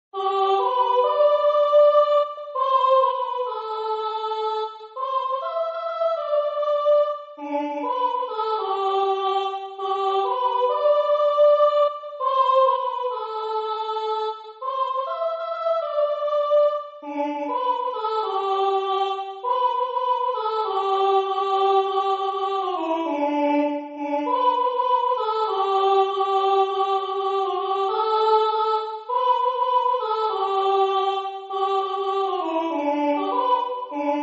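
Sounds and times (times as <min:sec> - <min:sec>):
soprano singing: 0:00.2 - 0:34.2.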